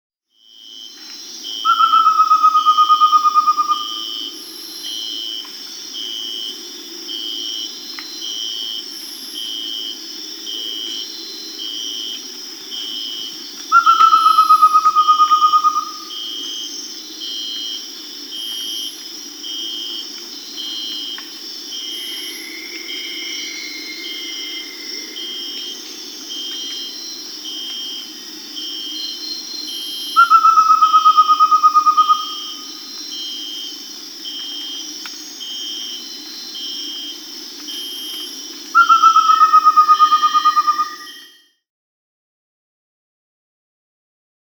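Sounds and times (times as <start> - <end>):
Amazonian Pygmy-Owl Glaucidium hardyi calling in Peru: 1.6 - 4.1, 13.7 - 16.5, 30.0 - 32.9, 38.2 - 41.4.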